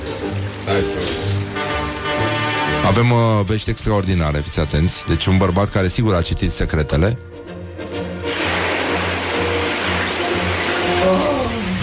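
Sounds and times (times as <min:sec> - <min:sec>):
shower water running: 0:00.0 - 0:02.7, 0:08.2 - 0:11.8
speech: 0:00.7 - 0:02.2, 0:02.8 - 0:07.3.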